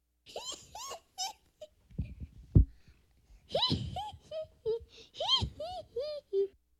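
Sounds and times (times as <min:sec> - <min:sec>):
boy laughing: 0:00.3 - 0:01.8, 0:03.5 - 0:06.5.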